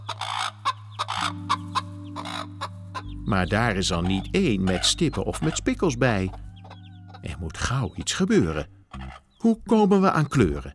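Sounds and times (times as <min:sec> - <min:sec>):
hens clucking: 0:00.0 - 0:09.5
steady low hum: 0:01.9 - 0:07.6
speech: 0:03.3 - 0:06.4, 0:07.3 - 0:08.8, 0:09.4 - 0:10.7.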